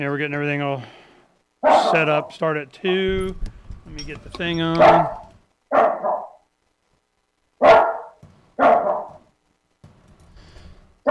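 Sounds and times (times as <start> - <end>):
speech: 0.0 - 1.0, 1.8 - 5.2
dog barking at a passerby outside a door: 1.6 - 2.0, 4.8 - 6.5, 7.6 - 9.3.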